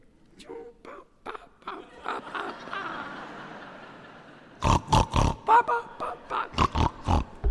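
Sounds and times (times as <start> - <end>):
laughter: 1.3 - 4.6, 5.4 - 7.4
pig grunting and snorting while rooting around: 4.6 - 5.5, 6.5 - 7.4.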